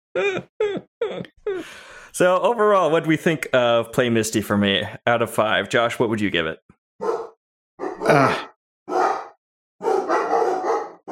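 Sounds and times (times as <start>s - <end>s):
speech: 0.2s - 0.5s, 2.1s - 6.7s, 8.1s - 8.5s
dogs barking: 7.0s - 8.1s, 8.9s - 11.1s.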